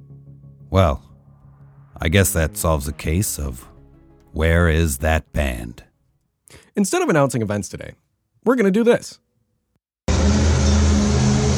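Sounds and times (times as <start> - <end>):
speech: 0.7 - 1.1, 2.0 - 3.7, 4.4 - 5.9, 6.5 - 9.2
monster truck engine revving: 10.1 - 11.5.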